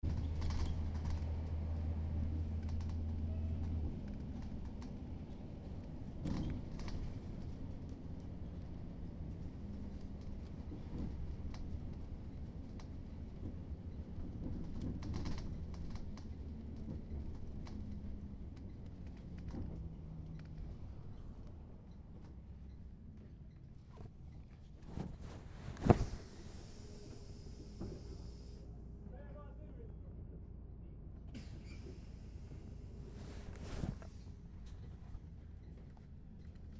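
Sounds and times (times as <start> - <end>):
local traffic bus in Helsinki: 0.0 - 36.7.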